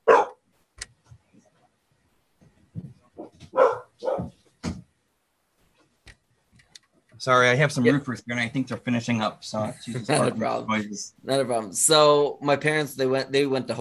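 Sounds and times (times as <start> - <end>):
dog barking: 0.0 - 0.4, 3.2 - 4.4
speech: 7.2 - 13.7.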